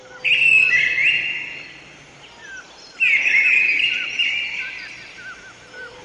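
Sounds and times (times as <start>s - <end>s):
bird singing bright trilling phrases: 0.0s - 6.0s.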